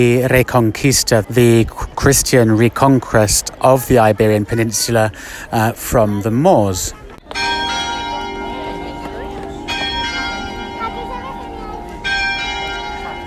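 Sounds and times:
speech: 0.0 - 7.4
low outdoor murmur: 0.0 - 13.2
church bells ringing: 7.3 - 13.2.

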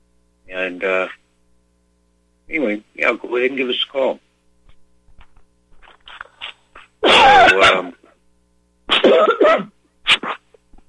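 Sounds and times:
speech: 0.5 - 1.2, 2.5 - 4.2, 7.5 - 8.0, 9.1 - 10.3
person with a lingering dry cough coughing harshly: 8.9 - 10.4.

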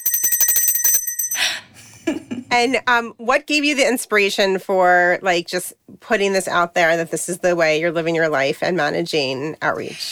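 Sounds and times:
small bell rung rapidly: 0.0 - 1.6
speech: 2.5 - 10.1.

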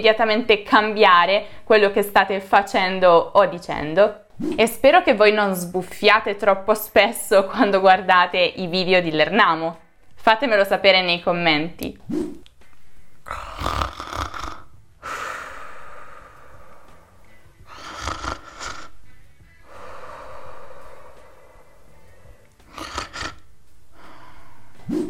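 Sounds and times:
speech: 0.0 - 12.4, 13.3 - 14.1
person imitating loud snoring: 13.2 - 16.4, 17.6 - 19.0, 22.6 - 23.5.

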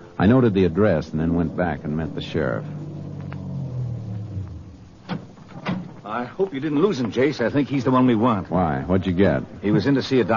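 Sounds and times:
speech: 0.2 - 2.8, 6.1 - 10.3
car engine rumbling as the car pulls away from the curb: 0.2 - 6.1.

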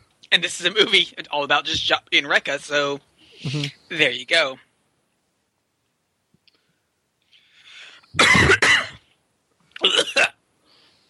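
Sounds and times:
speech: 0.3 - 4.7, 8.2 - 8.6
person coughing: 8.2 - 9.0, 9.8 - 10.4.

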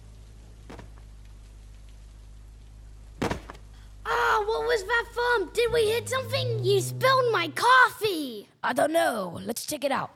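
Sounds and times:
heavy rain pouring down in a storm: 0.0 - 7.7
speech: 4.6 - 10.1.

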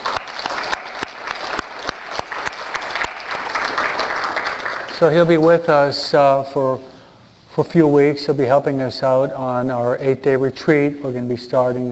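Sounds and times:
audience applause: 0.0 - 5.1
speech: 5.0 - 6.9, 7.6 - 11.8.

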